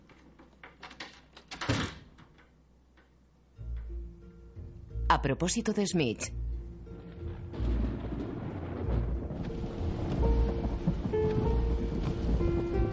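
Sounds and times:
speech: 0:05.1 - 0:06.5
deep rumbling low drone: 0:06.3 - 0:12.9
steady rain hissing at night while driving: 0:07.0 - 0:12.9.

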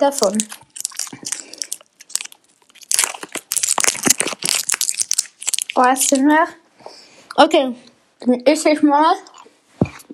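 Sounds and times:
speech: 0:00.0 - 0:01.3, 0:05.8 - 0:06.6, 0:07.4 - 0:09.3
snack package crinkling and crackling as it is opened for a tasting: 0:00.0 - 0:06.3.

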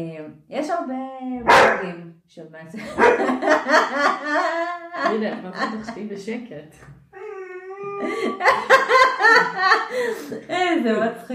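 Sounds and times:
speech: 0:00.0 - 0:07.1, 0:08.0 - 0:11.3
dog barking: 0:01.4 - 0:01.9, 0:03.0 - 0:03.6
laughter: 0:02.8 - 0:06.1, 0:07.8 - 0:10.7.

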